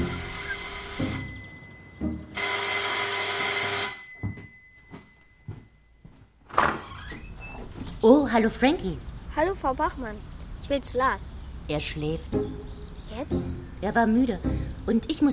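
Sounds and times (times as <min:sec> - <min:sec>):
front door doorbell buzzing: 0:00.0 - 0:05.2
soft footsteps: 0:04.1 - 0:06.5
door being opened: 0:06.4 - 0:08.0
speech: 0:08.1 - 0:15.3.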